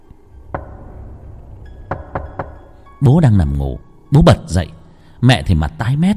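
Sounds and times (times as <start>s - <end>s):
heavy knocking and banging on a house's back door at night: 0.5s - 3.0s
speech: 3.0s - 6.1s.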